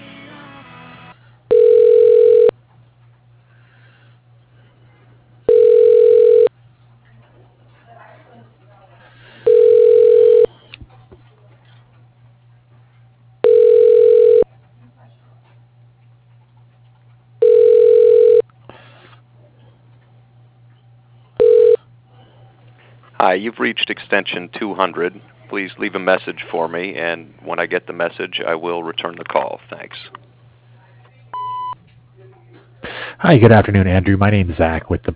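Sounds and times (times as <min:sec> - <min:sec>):
steady low hum: 0:01.1 - 0:35.1
telephone ringback tone while a call is transferred to an extension: 0:01.5 - 0:02.6, 0:05.5 - 0:06.5, 0:09.4 - 0:10.5, 0:13.4 - 0:14.5, 0:17.4 - 0:18.4, 0:21.4 - 0:21.8
speech: 0:23.2 - 0:30.2, 0:33.3 - 0:35.1.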